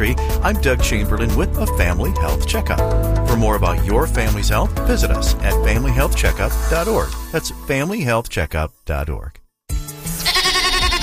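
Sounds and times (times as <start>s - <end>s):
speech: 0.0s - 9.4s
goat bleating with a bright quavering cry: 10.1s - 11.0s.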